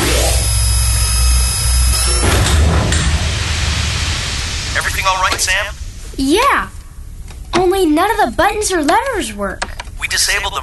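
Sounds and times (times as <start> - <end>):
motorized door sliding shut with a mechanical whir: 0.0 - 4.6
speech: 5.1 - 6.8, 7.5 - 10.6.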